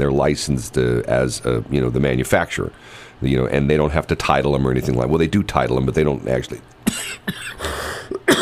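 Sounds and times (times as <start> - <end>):
speech: 0.0 - 7.5
person coughing: 6.8 - 8.4.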